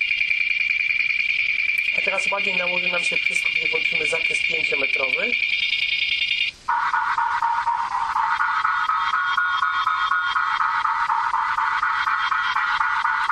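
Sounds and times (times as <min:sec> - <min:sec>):
high steady sonar aid tone echoing off a carpet and a table leg: 0:00.0 - 0:13.3
speech: 0:02.0 - 0:05.6.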